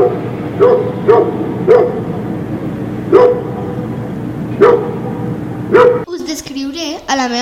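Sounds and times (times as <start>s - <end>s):
grey dog barking in short sharp bursts: 0.0s - 2.1s, 3.1s - 3.8s, 4.6s - 6.1s
steady low hum: 0.0s - 7.3s.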